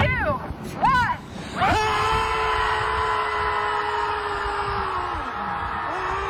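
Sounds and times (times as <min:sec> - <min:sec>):
crowd of people screaming together at a beach: 0:01.6 - 0:06.2.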